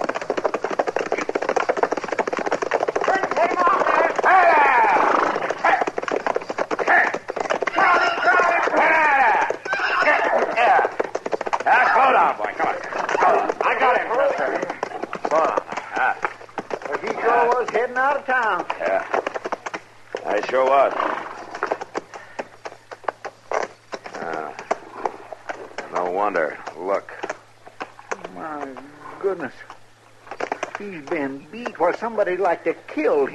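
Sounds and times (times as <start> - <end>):
runaway horse hooves galloping: 0.0 - 33.3
overlapping voices and excited shouting: 3.1 - 5.9, 6.8 - 11.0, 11.6 - 16.2
speech: 30.8 - 33.3.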